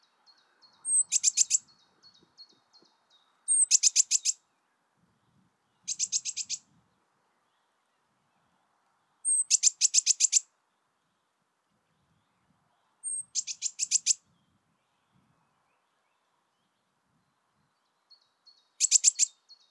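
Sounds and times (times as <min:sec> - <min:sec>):
Eurasian blue tit rapid buzzy scolding calls: 0:00.9 - 0:01.7, 0:03.5 - 0:04.4, 0:05.9 - 0:06.6, 0:09.3 - 0:10.4, 0:13.1 - 0:14.2, 0:18.8 - 0:19.3.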